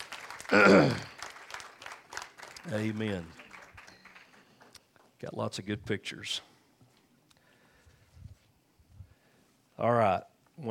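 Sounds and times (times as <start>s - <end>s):
audience applause after a church family blessing: 0.0s - 4.9s
speech: 0.5s - 1.0s, 2.8s - 3.4s, 5.2s - 6.5s, 9.8s - 10.7s.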